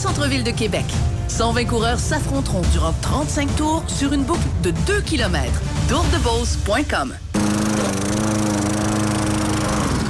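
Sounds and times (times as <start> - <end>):
speech: 0.0 - 7.2
lawn mower engine running: 7.4 - 10.0.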